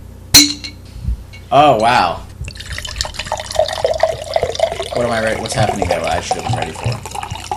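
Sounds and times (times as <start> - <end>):
speech: 1.5 - 2.3, 5.0 - 7.2
cider pouring into a glass in a steady stream: 2.4 - 7.5.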